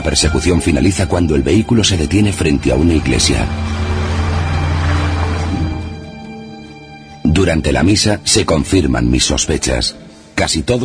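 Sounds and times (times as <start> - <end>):
speech: 0.0 - 3.8, 7.4 - 10.8
car speeding past with roaring engine and heavy road noise: 3.0 - 5.9.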